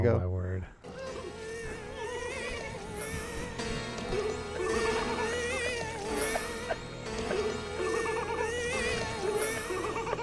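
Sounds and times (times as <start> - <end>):
bursts of laughter: 0.8 - 10.2
sustained droning musical chord: 0.8 - 10.2
wavering high-pitched crying: 0.8 - 10.2.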